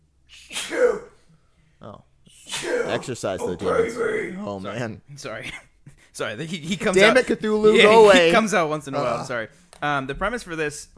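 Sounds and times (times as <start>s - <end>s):
person sneezing: 0.3s - 1.2s, 2.3s - 4.4s
speech: 2.9s - 10.9s.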